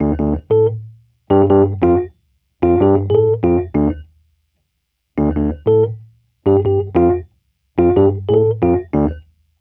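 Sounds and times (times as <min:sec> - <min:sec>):
Rhodes electric piano in D minor at 93 BPM: 0:00.0 - 0:04.0, 0:05.2 - 0:07.2, 0:07.8 - 0:09.2.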